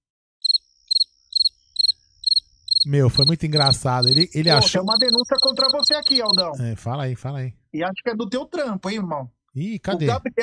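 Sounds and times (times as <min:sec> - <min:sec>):
cricket chirping: 0:00.4 - 0:06.6
speech: 0:02.8 - 0:10.4.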